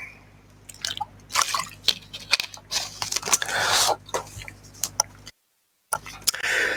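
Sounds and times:
person sipping and swallowing a drink: 0:00.7 - 0:05.3.

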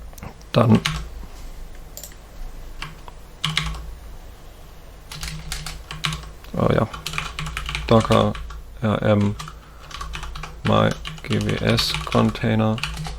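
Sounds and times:
speech: 0:00.5 - 0:01.0, 0:06.6 - 0:07.0, 0:07.9 - 0:09.5, 0:10.7 - 0:12.9
typing on a computer keyboard: 0:00.8 - 0:01.1, 0:02.8 - 0:03.8, 0:05.1 - 0:06.3, 0:06.9 - 0:08.6, 0:09.2 - 0:13.1.

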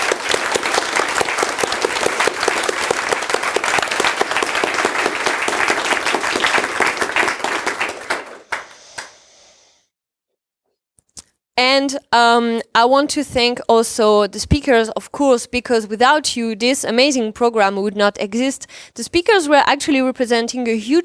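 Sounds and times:
event audience applauding: 0:00.0 - 0:09.2
speech: 0:11.8 - 0:21.0.

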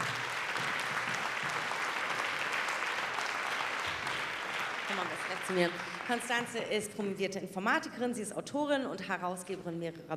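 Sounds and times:
audience applause: 0:00.0 - 0:06.7
speech: 0:04.9 - 0:10.1.

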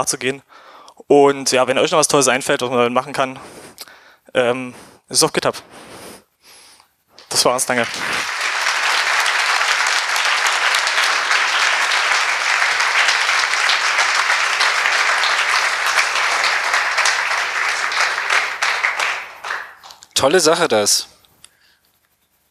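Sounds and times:
speech: 0:00.0 - 0:05.9, 0:07.4 - 0:08.3, 0:20.2 - 0:21.1
sizable audience applauding after lightning talks: 0:07.2 - 0:20.6.

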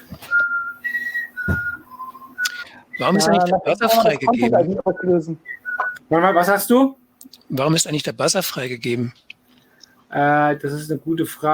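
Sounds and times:
whistled tune: 0:00.2 - 0:03.4, 0:04.9 - 0:06.6
speech: 0:03.0 - 0:09.3, 0:10.1 - 0:11.5.

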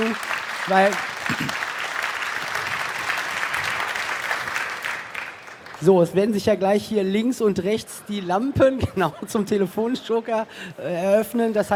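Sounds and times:
audience applause at the end of a talk: 0:00.0 - 0:05.9
speech: 0:00.1 - 0:01.6, 0:05.8 - 0:11.7.

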